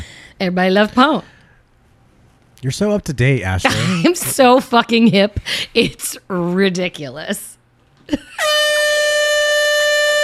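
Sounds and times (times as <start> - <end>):
speech: 0.4 - 1.4, 2.6 - 8.7
air horn blast: 8.4 - 10.2.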